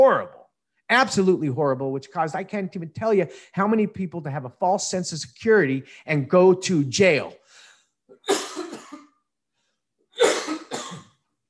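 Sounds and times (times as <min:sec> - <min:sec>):
speech: 0:00.1 - 0:08.4
harsh rasping coughing: 0:08.2 - 0:09.2, 0:10.2 - 0:11.2.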